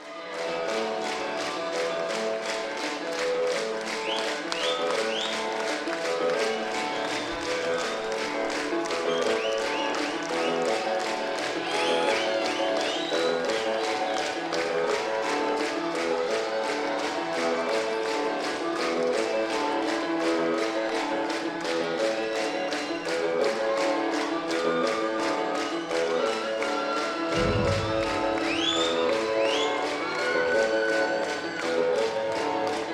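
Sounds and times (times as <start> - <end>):
large live crowd clapping in unison: 0.0 - 32.9
band playing intro music: 27.0 - 30.4.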